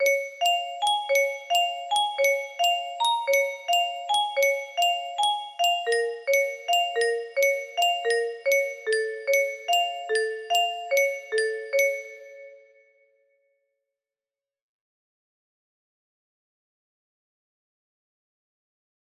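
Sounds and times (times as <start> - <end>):
music box melody: 0.0 - 12.7.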